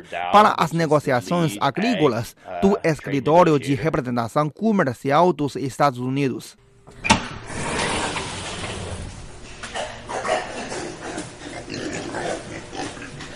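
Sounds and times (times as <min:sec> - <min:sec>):
speech: 0:00.0 - 0:07.1
many pigs grunting and squealing on a pig farm: 0:09.7 - 0:13.3.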